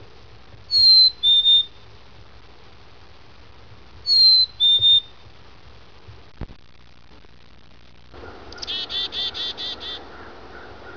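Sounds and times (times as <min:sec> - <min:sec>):
Black-capped Chickadee calling: 0:00.7 - 0:01.9, 0:04.0 - 0:05.2, 0:08.2 - 0:10.9.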